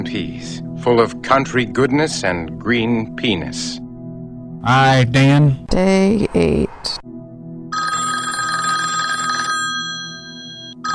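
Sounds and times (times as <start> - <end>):
speech: 0.3 - 3.8, 4.6 - 7.1
cell phone ringing in a bright trilling burst: 7.7 - 10.9.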